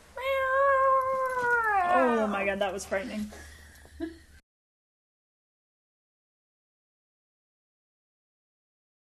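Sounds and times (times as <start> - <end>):
cat meowing: 0.2 - 2.2
speech: 2.4 - 4.2.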